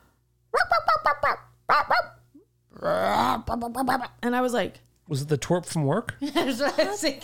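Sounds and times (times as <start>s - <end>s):
person imitating dog barking with loud sharp woofs: 0.5s - 3.5s
speech: 2.8s - 7.2s.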